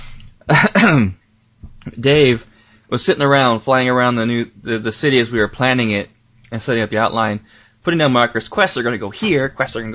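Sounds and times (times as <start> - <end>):
coughing and throat clearing: 0.4 - 1.2
speech: 0.5 - 1.2, 1.8 - 9.9.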